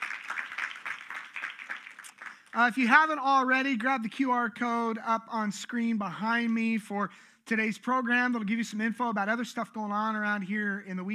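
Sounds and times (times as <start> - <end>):
audience applause of many hands clapping: 0.0 - 2.6
speech: 2.6 - 11.1.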